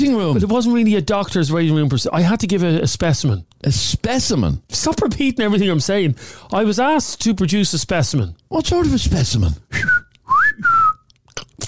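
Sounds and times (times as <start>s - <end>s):
speech: 0.3s - 10.0s
person giving a two-part whistle: 9.7s - 11.1s.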